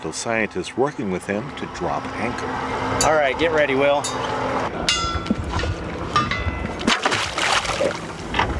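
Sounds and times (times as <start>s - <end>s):
speech: 0.0s - 5.0s
outdoor noise: 0.0s - 8.5s
water sloshing and splashing as an underwater camera drone is lowered from a boat: 6.7s - 8.5s.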